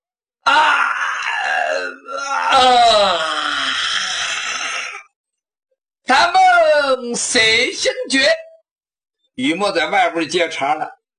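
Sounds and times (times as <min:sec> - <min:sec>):
storyteller's voice imitating a groaning stretch: 0:00.4 - 0:05.1
storyteller's voice imitating a waking man yawning: 0:00.4 - 0:05.1
speech: 0:07.2 - 0:08.4, 0:09.4 - 0:11.0.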